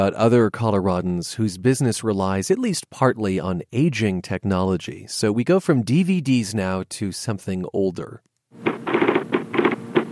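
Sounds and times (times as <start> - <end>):
speech: 0.0 - 8.7
typing on an IBM Selectric electric typewriter: 8.6 - 10.1.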